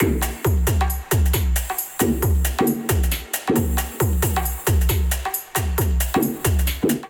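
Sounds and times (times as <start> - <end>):
drum kit beat: 0.0 - 7.0.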